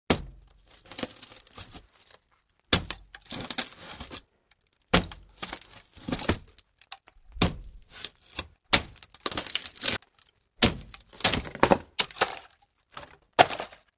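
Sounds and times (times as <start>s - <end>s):
axe chopping on door: 0.1s - 0.5s, 2.7s - 3.6s, 4.9s - 6.5s, 7.3s - 9.0s, 10.6s - 12.2s.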